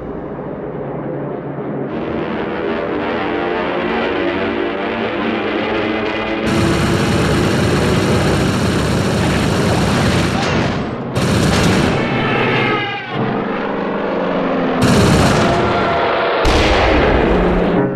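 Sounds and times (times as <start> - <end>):
aircraft engines roaring in an air battle: 0.0 - 17.9
explosive blasts in an air battle: 6.4 - 12.4, 14.8 - 17.9
heavy gunfire in an air battle: 6.4 - 12.6, 14.8 - 17.7.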